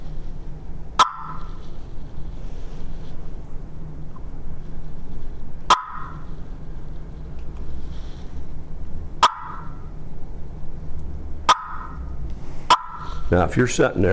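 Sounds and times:
low steady rumble: 0:00.0 - 0:14.1
gobbler clucks made on a turkey call: 0:01.0 - 0:01.6, 0:09.2 - 0:09.8, 0:11.5 - 0:12.0, 0:12.7 - 0:13.2
speech: 0:13.3 - 0:14.1.

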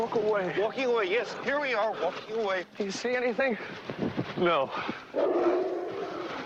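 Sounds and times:
speech: 0:00.0 - 0:05.7
dog barking: 0:05.2 - 0:06.4.

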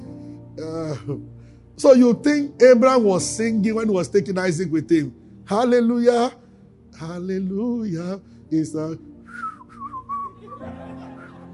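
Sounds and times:
speech: 0:00.6 - 0:06.4, 0:07.0 - 0:09.1
person whistling a short wavering melody: 0:09.3 - 0:10.6
laughter: 0:10.1 - 0:11.5.

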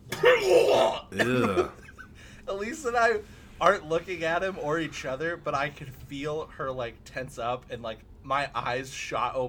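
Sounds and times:
person vocally imitating a man's harsh wet open-mouthed smoker's cough: 0:00.1 - 0:01.8
speech: 0:00.4 - 0:01.8, 0:02.6 - 0:09.4.

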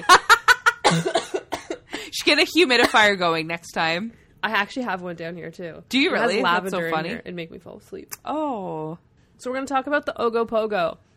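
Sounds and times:
person coughing in sharp hacks and ragged breathy coughs: 0:00.7 - 0:02.0, 0:02.8 - 0:03.1
speech: 0:02.3 - 0:11.1.

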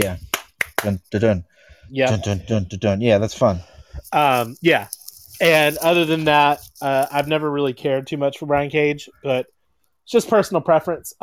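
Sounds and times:
slow mechanical robot-style hand clapping: 0:00.0 - 0:01.1
speech: 0:00.0 - 0:11.2.

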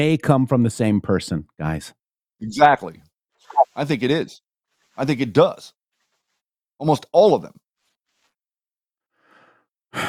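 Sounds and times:
speech: 0:00.0 - 0:03.1, 0:03.8 - 0:04.4, 0:05.0 - 0:05.8, 0:06.8 - 0:07.6
deep breathing: 0:09.1 - 0:10.0.

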